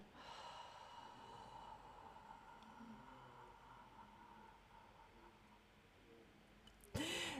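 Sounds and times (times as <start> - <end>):
slow controlled breathing: 0.0 - 5.9.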